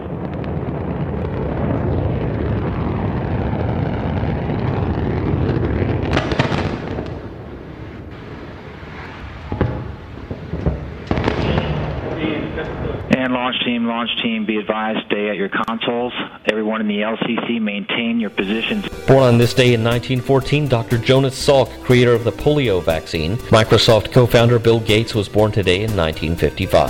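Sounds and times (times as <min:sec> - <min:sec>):
crackling bursts of Antares rocket engines at liftoff: 0:00.0 - 0:13.5, 0:18.3 - 0:26.8
Antares rocket engines roaring at liftoff: 0:00.0 - 0:14.8, 0:18.3 - 0:26.8
speech: 0:13.9 - 0:26.8.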